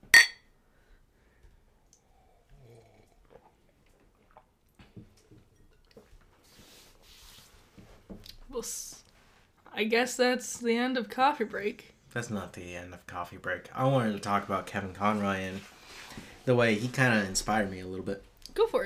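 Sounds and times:
cups clinking together in a toast: 0.0s - 0.4s
person sipping: 1.9s - 4.6s
speech: 8.5s - 8.9s, 9.8s - 15.8s, 16.4s - 18.8s.

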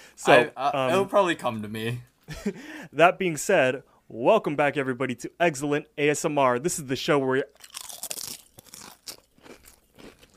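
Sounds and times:
speech: 0.2s - 7.8s
crunchy chewing of food: 7.6s - 10.3s.

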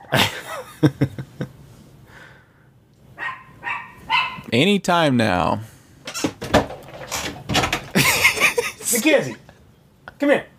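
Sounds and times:
laughter: 0.0s - 1.5s, 7.9s - 9.6s
speech: 0.1s - 1.2s, 4.5s - 5.7s, 9.1s - 9.4s, 10.2s - 10.5s
dog barking and yipping: 3.2s - 4.5s.

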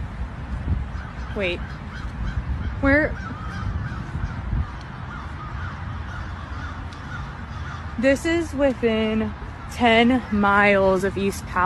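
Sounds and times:
steady rushing noise: 0.0s - 11.6s
large numbers of crows cawing near East Palestine: 0.9s - 8.4s
speech: 1.4s - 2.1s, 2.8s - 3.5s, 8.0s - 11.6s.

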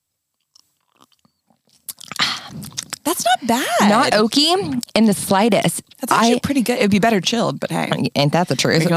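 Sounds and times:
wet mouth clicks and smacks while sipping Chardonnay wine: 0.5s - 3.2s
airy slurp of Chardonnay wine: 0.9s - 3.2s
speech: 2.5s - 8.9s.

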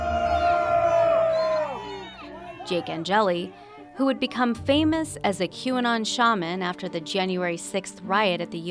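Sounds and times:
man howling in disapproval at a hotel meeting: 0.0s - 2.7s
speech: 2.7s - 8.7s.

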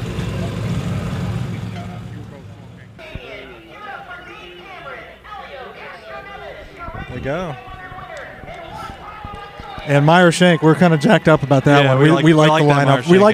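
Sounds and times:
Porsche race car roaring past in an open paddock: 0.0s - 3.0s
people chatting in a busy outdoor crowd: 0.0s - 13.3s
speech: 7.2s - 7.8s, 9.8s - 13.3s.

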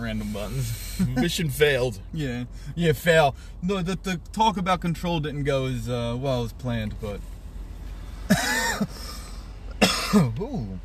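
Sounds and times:
speech: 0.1s - 7.3s, 8.3s - 9.2s, 10.1s - 10.8s
person coughing harshly: 9.8s - 10.4s.

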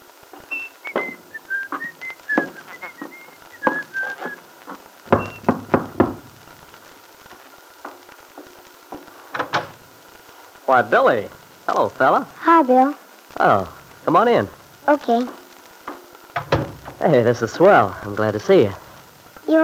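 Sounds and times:
bugle call: 0.3s - 6.3s, 15.2s - 16.7s
person whistling a cheerful tune going up steps of a house in an auto court: 0.5s - 4.4s
knocks and clatters: 4.7s - 6.3s, 7.8s - 9.8s, 15.8s - 17.0s
speech: 10.7s - 15.4s, 17.0s - 18.8s, 19.5s - 19.6s.

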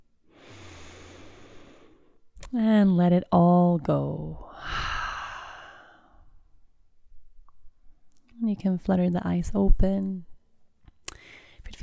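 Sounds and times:
slow deep inhale through the nose and mouth: 0.3s - 2.2s, 4.5s - 6.4s, 11.1s - 11.6s
speech: 2.5s - 4.5s, 8.6s - 10.3s.

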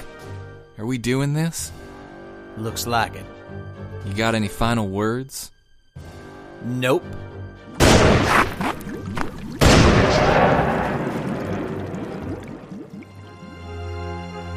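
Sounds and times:
speech: 0.8s - 1.8s, 2.6s - 7.3s
loud sharp gunshots: 7.8s - 8.7s, 9.6s - 12.1s.

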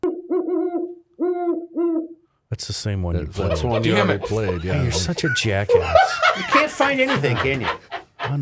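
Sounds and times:
eastern screech owl giving quavering tonal calls: 0.3s - 2.2s
speech: 2.6s - 8.4s
laughter: 3.2s - 8.4s.

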